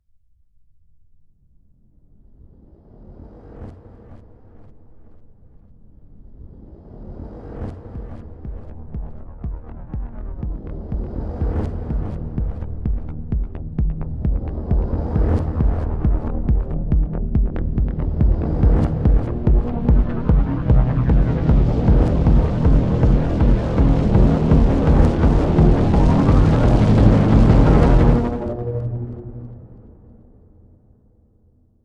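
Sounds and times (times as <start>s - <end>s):
unsettling horror soundscape: 5.9s - 31.4s.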